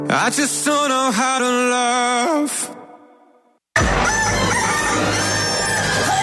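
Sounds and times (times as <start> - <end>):
speech: 0.1 - 2.6
rooster crowing as a radio station jingle: 3.8 - 6.2.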